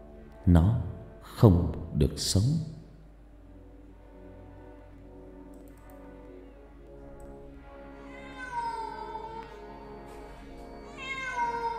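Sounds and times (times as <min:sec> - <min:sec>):
speech: 0:00.5 - 0:02.8
cat meowing and wailing pitifully: 0:08.0 - 0:09.6, 0:10.8 - 0:11.7.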